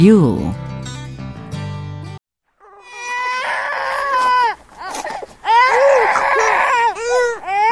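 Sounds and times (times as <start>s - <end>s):
speech: 0.0s - 0.7s
young child crying: 2.6s - 7.7s.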